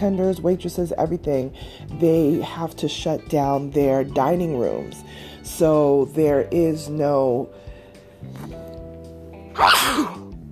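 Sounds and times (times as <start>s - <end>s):
speech: 0.0s - 8.6s, 9.6s - 10.2s
loud sneeze with a breathy rush: 9.6s - 10.3s.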